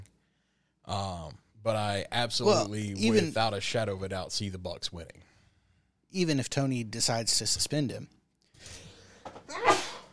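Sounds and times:
speech: 0.9s - 5.3s, 6.1s - 8.8s
sneeze: 9.5s - 10.1s.

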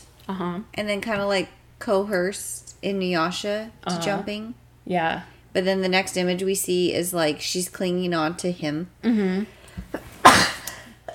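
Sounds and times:
speech: 0.3s - 10.0s
person sneezing: 9.9s - 11.0s.

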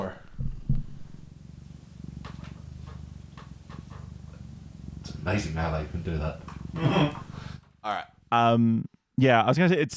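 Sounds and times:
cat purring close to the microphone: 0.0s - 1.3s
speech: 5.2s - 7.2s, 7.9s - 9.9s.

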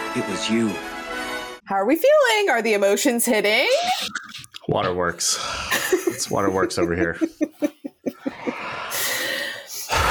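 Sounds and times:
speech: 0.2s - 0.9s, 1.7s - 7.4s
laughter: 3.7s - 9.5s
heavy breathing: 5.2s - 6.6s, 8.2s - 10.1s.

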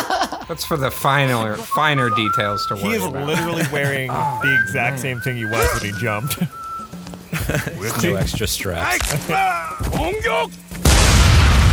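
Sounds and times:
laughter: 0.0s - 10.2s
speech: 0.5s - 6.6s, 7.5s - 10.6s
grenade explosion: 10.8s - 11.7s.

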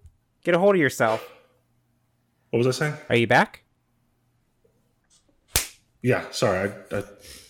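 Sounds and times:
speech: 0.4s - 1.3s, 2.5s - 3.6s, 6.0s - 7.4s
slap to the face: 5.5s - 5.9s.

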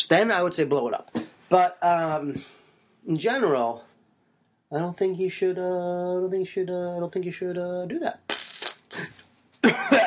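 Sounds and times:
speech: 0.1s - 3.9s, 4.7s - 8.3s, 8.9s - 10.0s
person coughing: 8.9s - 10.0s.

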